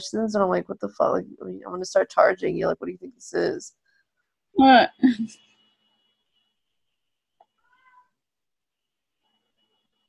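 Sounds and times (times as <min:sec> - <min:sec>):
speech: 0:00.0 - 0:03.8, 0:04.6 - 0:05.5
cat meow behind a door: 0:07.6 - 0:08.2.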